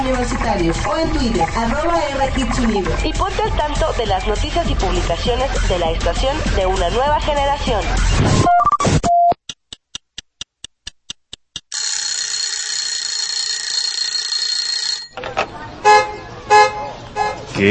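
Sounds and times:
harsh continuous ringing: 0:00.0 - 0:03.0
steady ticking: 0:00.0 - 0:04.5, 0:09.5 - 0:11.8
speech: 0:00.1 - 0:08.7
traffic noise: 0:15.2 - 0:17.7
car horns honking: 0:15.8 - 0:17.7.

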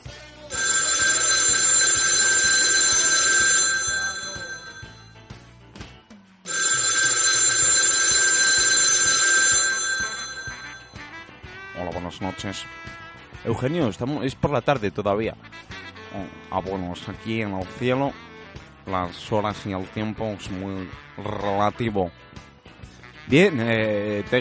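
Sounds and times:
old-fashioned telephone bell ringing with a bright metallic trill: 0:00.5 - 0:05.3, 0:06.5 - 0:11.2
speech: 0:12.2 - 0:15.5, 0:16.1 - 0:18.2, 0:18.9 - 0:22.2, 0:23.3 - 0:24.3.

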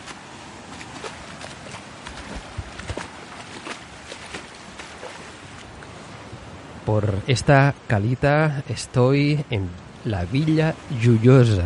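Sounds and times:
constant watery wash of the sea: 0:00.0 - 0:06.5, 0:09.6 - 0:11.6
feet splashing in shallow seawater at a small cove in Villajoyosa Spain: 0:00.0 - 0:06.5
speech: 0:06.9 - 0:11.6.

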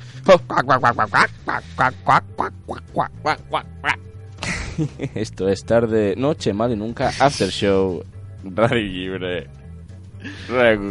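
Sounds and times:
speech: 0:00.2 - 0:04.1, 0:04.8 - 0:09.6, 0:10.2 - 0:10.9
duck quacking: 0:00.5 - 0:04.0
laughter: 0:04.4 - 0:05.2.

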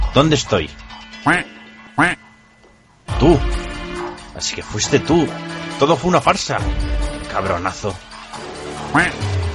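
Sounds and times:
speech: 0:00.2 - 0:02.2, 0:03.2 - 0:03.6, 0:04.4 - 0:08.1, 0:08.9 - 0:09.4
duck quacking: 0:01.3 - 0:02.3, 0:08.8 - 0:09.3.

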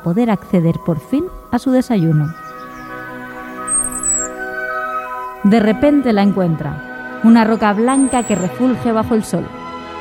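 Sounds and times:
speech: 0:00.0 - 0:02.4, 0:05.4 - 0:09.6
sustained musical drone: 0:00.0 - 0:09.9
eagle screech after catching a tortoise over the Sicilian countryside: 0:02.1 - 0:05.4.

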